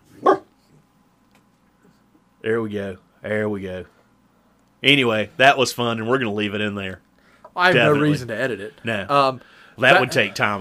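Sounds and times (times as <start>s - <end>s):
dog barking: 0.2s - 0.5s
speech: 2.4s - 4.0s, 4.8s - 7.0s, 7.6s - 10.5s.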